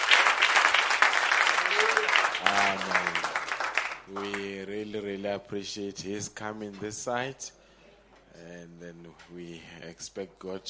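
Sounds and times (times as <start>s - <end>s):
audience applause at a church service: 0.0s - 4.4s
speech: 2.4s - 3.3s, 4.1s - 7.6s, 8.4s - 10.6s.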